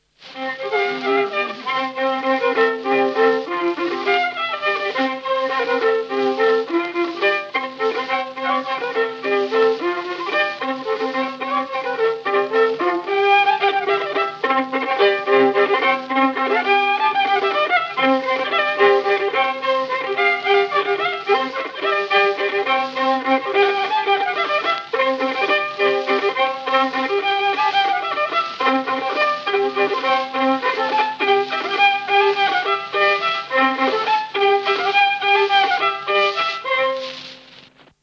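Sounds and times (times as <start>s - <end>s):
folk waltz played on violin: 0.0s - 37.8s.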